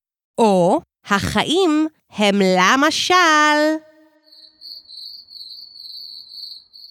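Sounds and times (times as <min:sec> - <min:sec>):
speech: 0:00.4 - 0:03.9
cricket chirping in a high-pitched trill: 0:04.1 - 0:06.8.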